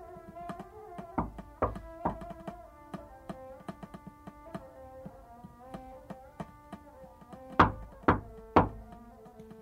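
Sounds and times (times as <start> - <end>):
knocking on a hotel suite door: 0.3 - 4.7, 7.3 - 9.0.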